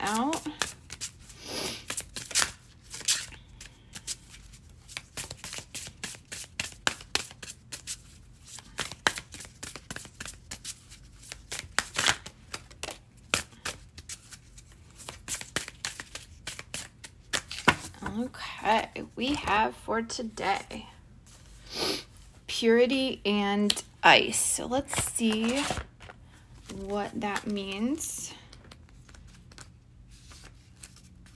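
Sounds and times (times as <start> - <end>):
elemental oracle card deck being shuffled: 0.1 - 18.2, 24.8 - 27.7, 28.5 - 31.3
speech: 19.5 - 20.9, 22.6 - 25.8, 26.8 - 28.2.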